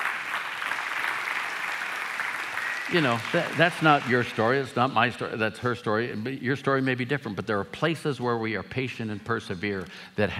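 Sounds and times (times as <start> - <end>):
crowd applauding: 0.0 - 5.1
speech: 2.9 - 10.3.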